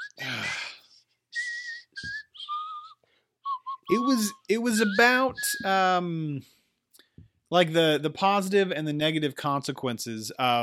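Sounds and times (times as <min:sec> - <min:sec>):
person whistling a short melody: 0:00.0 - 0:00.8, 0:01.4 - 0:06.0
breathy vocal burst: 0:00.1 - 0:00.9
speech: 0:03.9 - 0:06.6, 0:07.5 - 0:10.6.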